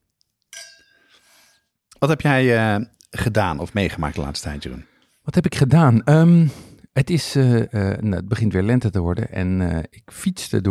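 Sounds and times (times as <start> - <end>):
wine glasses clinking in a toast: 0.5 - 1.5
speech: 2.0 - 10.7.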